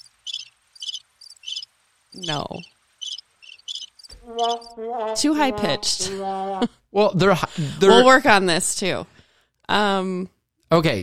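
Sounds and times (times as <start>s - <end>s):
crickets chirping: 0.0s - 4.7s
speech: 2.2s - 2.8s, 4.2s - 9.1s, 9.7s - 11.0s.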